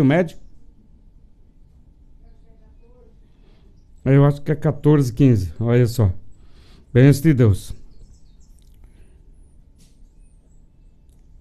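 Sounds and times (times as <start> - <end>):
speech: 0.0 - 0.4, 4.0 - 6.2, 6.9 - 7.8
songbird chirping and whistling: 0.0 - 11.3.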